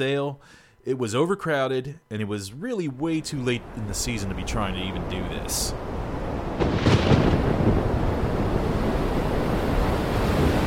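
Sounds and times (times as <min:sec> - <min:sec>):
speech: 0:00.0 - 0:06.0
waves surging and crashing: 0:03.0 - 0:10.6
gusting wind: 0:03.1 - 0:10.6
stormy sea roaring: 0:03.1 - 0:10.6
deep thunder-like rumble: 0:05.3 - 0:10.6.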